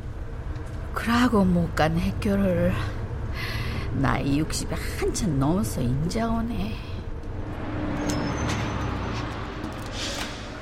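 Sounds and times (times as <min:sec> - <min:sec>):
bus engine drone on a well-paved road: 0:00.0 - 0:10.6
speech: 0:01.0 - 0:03.0, 0:03.9 - 0:06.9
bus air-brake hisses: 0:09.9 - 0:10.6.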